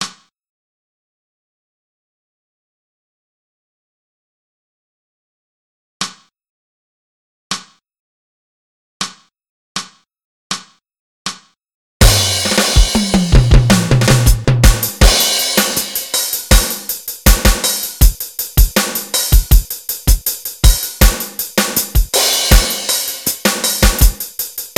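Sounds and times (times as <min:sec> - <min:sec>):
snare drum break: 0:12.0 - 0:24.7.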